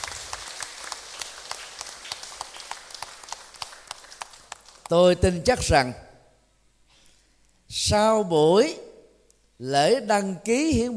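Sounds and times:
audience applauding with many hands clapping: 0:00.0 - 0:04.9
speech: 0:04.9 - 0:06.0, 0:07.8 - 0:08.8, 0:09.6 - 0:10.9.

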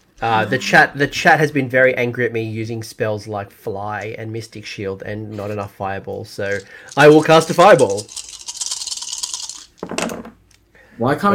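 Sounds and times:
speech: 0:00.2 - 0:08.3, 0:11.0 - 0:11.3
dice rolling on a hard tabletop in a tabletop role-playing game: 0:06.4 - 0:10.4.

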